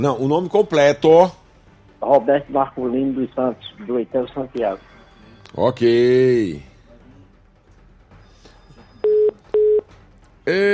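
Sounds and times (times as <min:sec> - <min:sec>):
speech: 0:00.0 - 0:01.4, 0:02.0 - 0:04.9, 0:05.5 - 0:06.7, 0:10.4 - 0:10.7
harsh buzzy telephone call tone: 0:08.9 - 0:09.8
telephone call beeps: 0:09.0 - 0:09.9.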